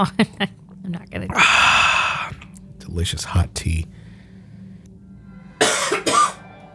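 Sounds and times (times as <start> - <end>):
speech: 0.0 - 1.7, 2.9 - 4.0
person coughing harshly: 5.6 - 6.4.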